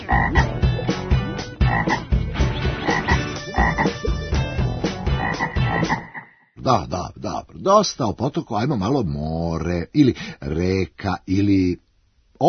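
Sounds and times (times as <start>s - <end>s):
frogs croaking by a stream: 0.0s - 4.2s, 5.0s - 6.6s
speech: 6.7s - 11.8s.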